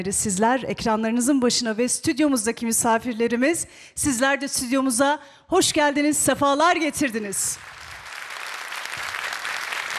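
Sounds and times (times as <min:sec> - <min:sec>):
speech: 0:00.0 - 0:07.8
studio audience applause: 0:07.6 - 0:09.9.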